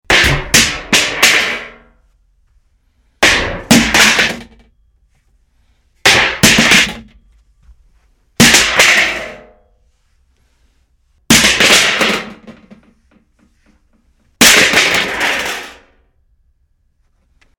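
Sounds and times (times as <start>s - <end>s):
metal object falling: 0.1s - 1.9s, 3.2s - 4.7s, 6.0s - 7.2s, 8.4s - 9.7s, 11.3s - 13.0s, 14.4s - 16.0s.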